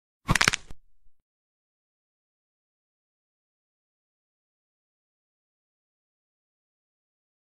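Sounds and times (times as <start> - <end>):
bone cracking: 0.3 - 0.8.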